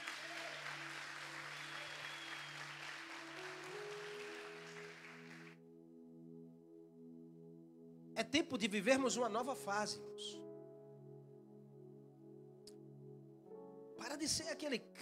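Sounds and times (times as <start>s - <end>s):
crowd applauding: 0.0s - 5.6s
sustained keyboard or organ chords: 0.0s - 15.0s
speech: 8.2s - 10.4s, 14.3s - 15.0s.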